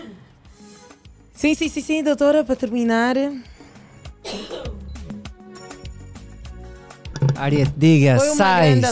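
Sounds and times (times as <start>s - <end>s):
speech: 1.4s - 3.5s, 7.4s - 8.8s
harsh coughing fit: 4.2s - 4.8s
throat clearing: 4.2s - 4.8s.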